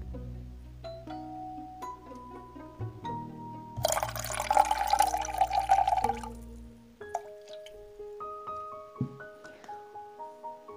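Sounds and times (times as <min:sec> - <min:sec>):
soft music: 0:00.0 - 0:10.7
water pouring into a blender jar holding vegetables: 0:03.8 - 0:06.4.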